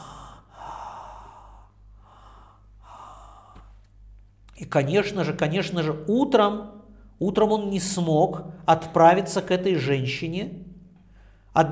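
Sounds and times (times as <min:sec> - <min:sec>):
heavy labored breathing of a sick man lying down: 0:00.0 - 0:03.9
speech: 0:04.6 - 0:10.7, 0:11.6 - 0:11.7.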